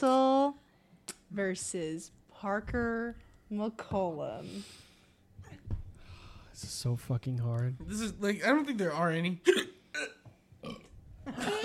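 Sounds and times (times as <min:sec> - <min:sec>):
speech: 0:01.3 - 0:04.9, 0:06.6 - 0:10.2
person burping: 0:09.5 - 0:11.6.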